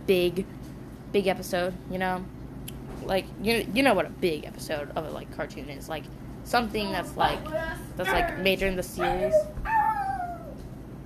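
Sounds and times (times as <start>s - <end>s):
speech: 0.1s - 2.4s, 3.0s - 9.8s
dog giving a short high falling whine: 9.0s - 10.7s.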